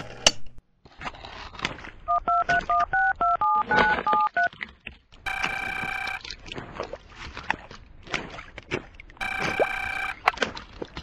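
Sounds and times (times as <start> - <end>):
telephone keypad dialing tones: 2.1 - 4.5, 5.3 - 6.2, 9.2 - 10.2.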